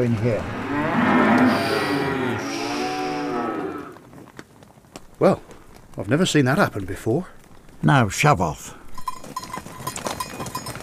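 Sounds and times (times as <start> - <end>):
speech: 0.0 - 0.6, 5.2 - 8.8
cow mooing: 0.3 - 4.0.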